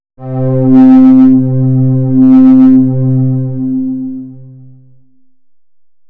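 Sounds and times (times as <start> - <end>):
stringy synth: 0.2 - 5.0.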